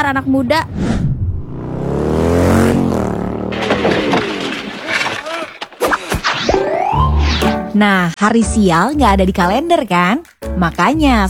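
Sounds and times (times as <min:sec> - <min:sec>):
speech: 0:00.0 - 0:01.1, 0:07.8 - 0:11.2
motorcycle speeding through a red light: 0:01.1 - 0:05.2
sharp scattered noises: 0:03.1 - 0:07.6.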